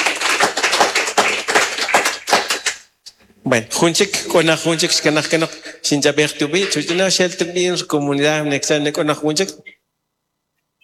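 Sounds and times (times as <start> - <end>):
small crowd applauding: 0.0 - 2.9
speech: 3.4 - 9.8.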